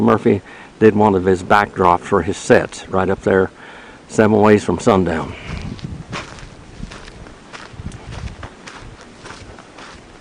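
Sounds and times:
speech: 0:00.0 - 0:05.6
footsteps crunching on dry ground in a valley: 0:05.0 - 0:10.1
soft rustling: 0:05.2 - 0:10.1.

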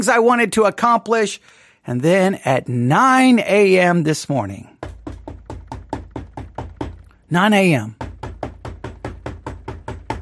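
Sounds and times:
speech: 0:00.0 - 0:04.7, 0:07.3 - 0:08.0
rapid knocking on a home's front door: 0:04.7 - 0:07.1, 0:07.8 - 0:10.2.

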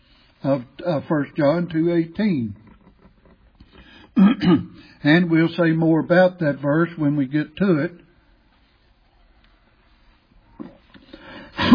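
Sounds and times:
speech: 0:00.4 - 0:02.6, 0:04.2 - 0:08.0
throat clearing from a scratchy throat: 0:04.2 - 0:04.8.

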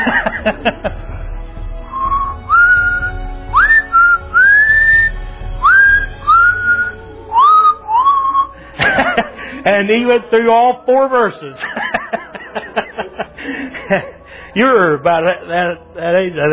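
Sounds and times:
laughter: 0:00.0 - 0:01.3, 0:07.4 - 0:10.2, 0:11.1 - 0:14.9
speech: 0:00.1 - 0:01.2, 0:09.7 - 0:12.2, 0:13.4 - 0:16.5
person whistling a melodic tune with rising sliding notes: 0:01.9 - 0:08.6.

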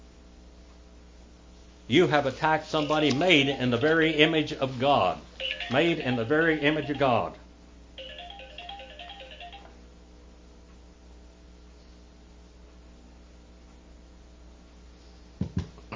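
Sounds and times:
low steady hum: 0:00.0 - 0:15.9
speech: 0:01.9 - 0:07.4
electronic phone ringtone from an incoming call: 0:05.4 - 0:07.3, 0:08.0 - 0:09.7.

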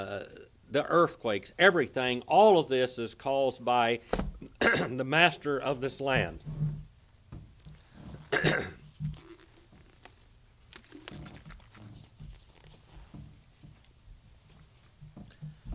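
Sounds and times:
speech: 0:00.0 - 0:06.6, 0:08.4 - 0:08.8
man coughing sharply: 0:04.4 - 0:05.0, 0:08.3 - 0:08.8
throat clearing: 0:04.4 - 0:05.0, 0:08.3 - 0:08.8
man taking a drink: 0:07.7 - 0:12.9
soft swallowing: 0:07.7 - 0:12.9.

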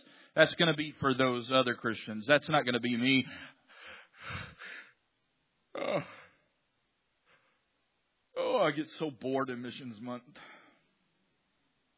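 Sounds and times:
speech: 0:00.4 - 0:03.6, 0:05.8 - 0:06.2, 0:08.4 - 0:10.6
person yawning aloud: 0:05.7 - 0:06.4.

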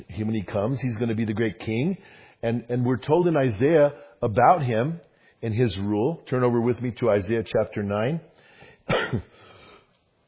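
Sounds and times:
speech: 0:00.0 - 0:08.3, 0:09.1 - 0:09.4
person coughing: 0:08.9 - 0:09.4.

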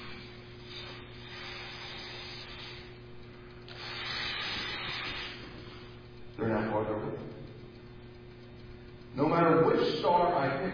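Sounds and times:
balloon being inflated: 0:00.0 - 0:03.0, 0:03.7 - 0:06.0
faint low hum: 0:00.0 - 0:10.7.

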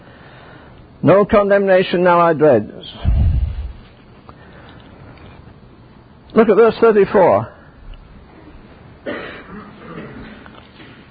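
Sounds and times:
speech: 0:01.0 - 0:03.1, 0:06.4 - 0:07.6
person coughing or clearing throat: 0:09.1 - 0:10.4.

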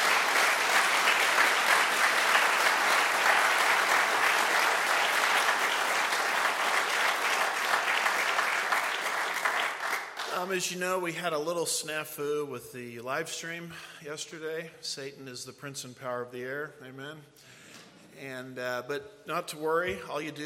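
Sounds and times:
sizable audience applause: 0:00.0 - 0:10.5
speech: 0:10.5 - 0:17.6, 0:18.2 - 0:20.4.

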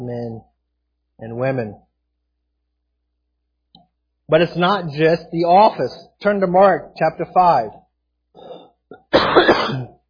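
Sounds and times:
speech: 0:00.0 - 0:00.5, 0:01.2 - 0:01.9, 0:04.3 - 0:07.8
throat clearing from a tickle in the throat: 0:08.4 - 0:10.0.

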